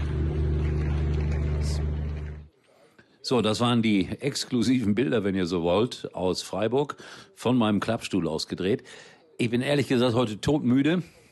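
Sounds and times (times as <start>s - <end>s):
generator humming: 0.0s - 2.5s
noise: 0.0s - 11.3s
speech: 3.3s - 11.2s.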